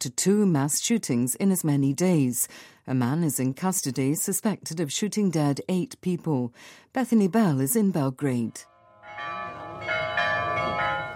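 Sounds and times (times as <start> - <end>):
speech: 0.0 - 9.4
village church bells ringing: 8.7 - 11.1.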